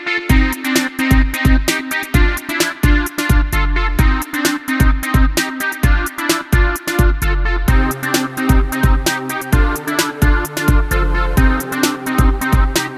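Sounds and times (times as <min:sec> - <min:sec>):
old school breakbeat ringtone: 0:00.3 - 0:12.9.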